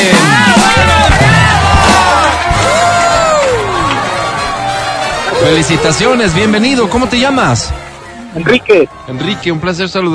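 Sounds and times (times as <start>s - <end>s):
high excited shouts and whoops: 0.1s - 6.4s
crowd applauding after a sung performance: 0.5s - 8.6s
speech: 5.4s - 7.8s, 8.4s - 10.1s.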